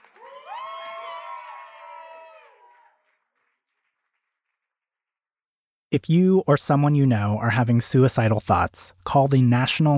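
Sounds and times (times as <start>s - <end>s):
crowd cheering with whoops and shouts: 0.0s - 3.4s
speech: 5.9s - 9.9s.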